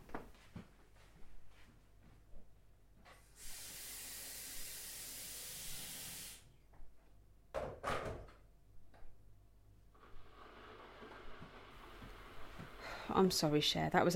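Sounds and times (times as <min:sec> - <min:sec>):
steam hissing: 0:03.4 - 0:06.5
speech: 0:13.2 - 0:14.1.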